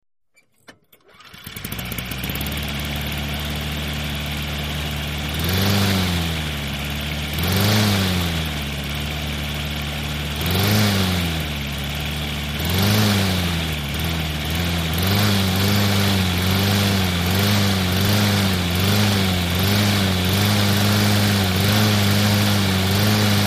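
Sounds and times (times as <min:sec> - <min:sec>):
small engine lawn mower starting, fluctuating engine speeds and turned off: 0:00.4 - 0:23.4.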